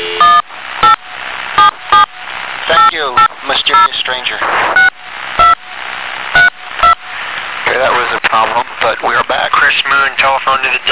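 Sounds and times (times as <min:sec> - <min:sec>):
steady hiss: 0:00.0 - 0:10.9
electronic telephone dialing keypad tones: 0:00.2 - 0:01.0.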